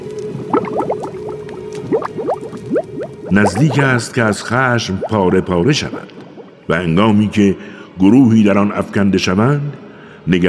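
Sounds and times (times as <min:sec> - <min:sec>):
thick liquid boiling and churning: 0:00.0 - 0:04.4, 0:05.0 - 0:06.7
speech: 0:03.3 - 0:10.4.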